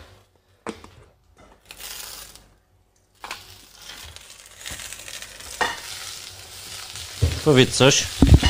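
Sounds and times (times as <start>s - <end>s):
oil sizzling in a hot pan: 3.2s - 8.4s
speech: 7.4s - 8.3s.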